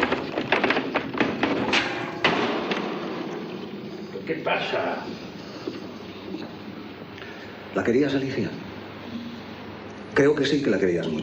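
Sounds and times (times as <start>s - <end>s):
locked bedroom door being forced open: 0.0s - 4.1s
sharp bangs of a door giving way: 0.0s - 6.3s
speech: 4.3s - 5.3s, 7.8s - 8.6s, 10.2s - 11.2s.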